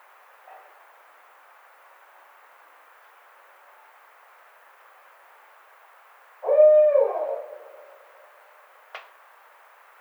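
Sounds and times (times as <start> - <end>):
barred owl hooting: 6.4 - 8.1.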